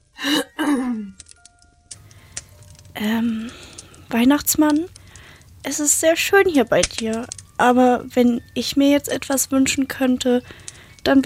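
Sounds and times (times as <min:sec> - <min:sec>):
person clearing throat: 0:00.2 - 0:01.2
speech: 0:03.0 - 0:05.0, 0:05.6 - 0:11.2.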